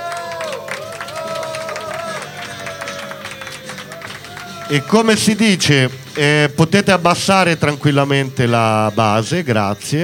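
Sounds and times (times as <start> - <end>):
crowd cheering and shouting: 0.0 - 5.4
crowd clapping: 0.0 - 6.4
speech: 4.7 - 10.0.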